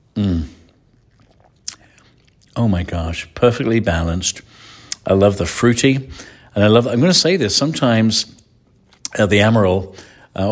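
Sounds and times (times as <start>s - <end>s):
person sipping a drink: 0.0s - 2.6s
speech: 2.6s - 8.4s, 9.2s - 10.5s.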